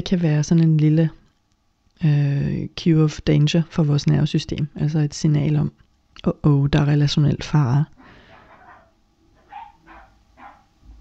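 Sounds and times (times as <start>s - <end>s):
speech: 0.0s - 1.2s, 2.0s - 8.0s
dog barking in short sharp yaps: 8.0s - 10.8s.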